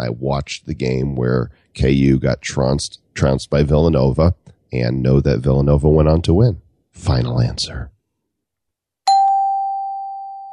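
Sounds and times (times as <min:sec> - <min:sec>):
speech: 0:00.0 - 0:08.0
bright metallic doorbell chime: 0:09.1 - 0:10.5.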